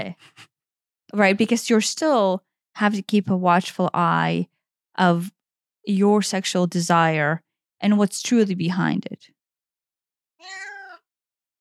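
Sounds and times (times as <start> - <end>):
speech: 0.0 - 0.5, 1.1 - 9.4, 10.4 - 10.7
cat meowing: 10.4 - 11.1.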